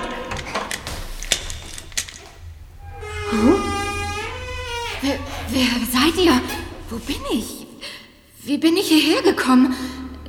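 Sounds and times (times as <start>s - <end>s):
door creaking: 0.0s - 7.8s
speech: 3.3s - 3.5s, 5.0s - 7.6s, 8.4s - 10.0s.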